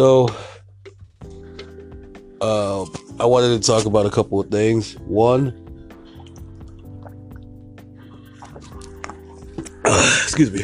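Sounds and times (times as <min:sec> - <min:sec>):
speech: 0:00.0 - 0:00.4, 0:02.4 - 0:05.6, 0:10.4 - 0:10.6
steady tonal background: 0:00.0 - 0:10.6
person drinking a beverage: 0:00.8 - 0:01.9, 0:05.7 - 0:10.3
liquid dripping: 0:05.6 - 0:10.6.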